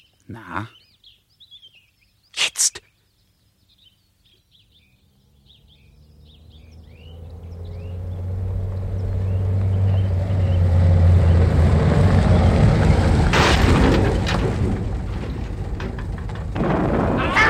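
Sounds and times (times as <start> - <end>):
speech: 0.3 - 0.8
low engine rumble: 5.2 - 17.4
new car plunging into a gorge, radio drama effect: 6.3 - 17.4
harsh crashing bursts: 12.7 - 17.4.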